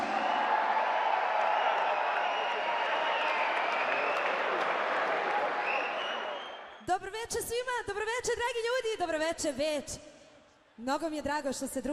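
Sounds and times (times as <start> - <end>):
audience applause greeting a performer on an evening show stage: 0.0 - 6.8
speech: 6.9 - 10.1, 10.8 - 11.9.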